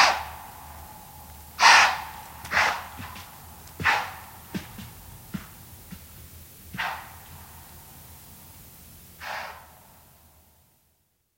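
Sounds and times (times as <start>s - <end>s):
alarmed white-tailed deer snorting at night: 1.5s - 6.0s, 6.7s - 7.5s, 9.2s - 9.8s.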